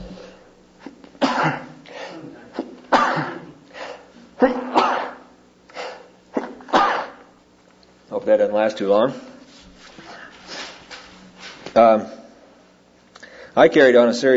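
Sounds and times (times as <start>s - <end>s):
person sneezing: 0.0s - 7.3s
speech: 1.4s - 1.7s, 4.4s - 4.7s, 8.2s - 9.3s, 11.8s - 12.1s, 13.6s - 14.3s
sharp inhales: 13.2s - 13.6s.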